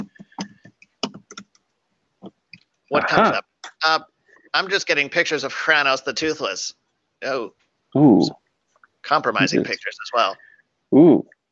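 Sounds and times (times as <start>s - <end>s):
typing on a computer keyboard for an online search: 0.0s - 1.7s
speech: 2.9s - 8.4s, 9.1s - 11.3s.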